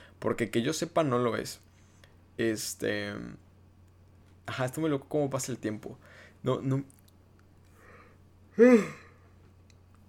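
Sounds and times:
speech: 0.2 - 1.7, 2.4 - 3.4, 4.5 - 7.0, 8.6 - 9.0
person yawning: 8.5 - 9.2.

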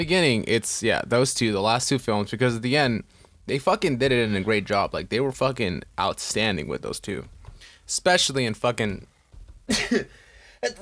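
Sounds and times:
speech: 0.0 - 9.1, 9.7 - 10.8
loud sneeze: 9.7 - 10.8.

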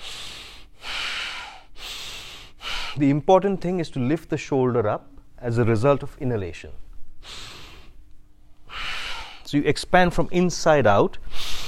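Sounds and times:
rapid rhythmic panting breaths: 0.0 - 3.0, 8.7 - 9.5
speech: 3.0 - 6.8, 9.5 - 11.4.

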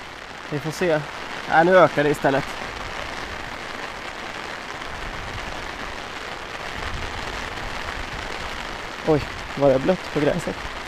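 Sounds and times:
heavy rain: 0.0 - 10.8
speech: 0.5 - 2.6, 9.0 - 10.7.

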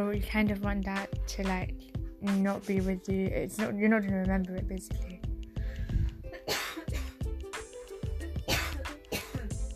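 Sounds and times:
speech: 0.0 - 5.2
person coughing in hacking bursts: 6.3 - 7.2, 8.4 - 9.6
throat clearing: 8.5 - 9.6.

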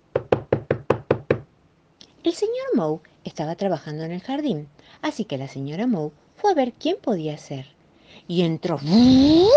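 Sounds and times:
knocking on a door: 0.1 - 1.5
speech: 2.2 - 9.5.

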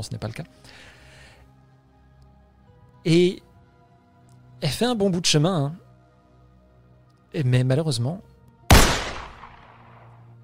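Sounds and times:
speech: 0.0 - 1.0, 3.0 - 3.5, 4.6 - 5.8, 7.3 - 8.3
gunshot: 8.7 - 10.1.

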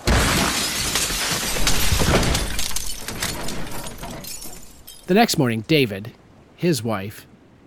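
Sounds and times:
shattering and crackling glass debris: 0.0 - 5.1
tree branch smashing through a glass window: 0.0 - 5.2
speech: 5.1 - 7.3.

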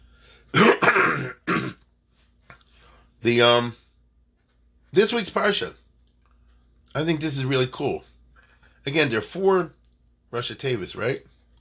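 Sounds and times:
person coughing: 0.5 - 1.8
person clearing throat: 0.6 - 1.8
speech: 3.2 - 3.8, 4.9 - 5.8, 6.9 - 8.2, 8.8 - 11.3.

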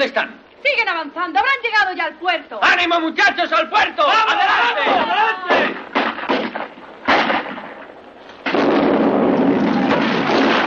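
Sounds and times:
speech: 0.0 - 5.9
bomb blasts: 5.5 - 10.6.

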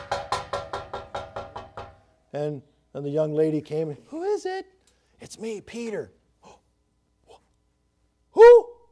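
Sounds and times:
clanging knocks on a metal door: 0.0 - 2.0
speech: 2.3 - 6.2.

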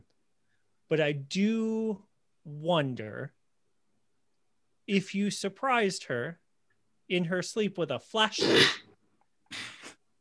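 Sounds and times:
speech: 0.9 - 3.4, 4.9 - 6.4, 7.1 - 8.8
person sneezing: 8.4 - 8.9, 9.5 - 10.0.

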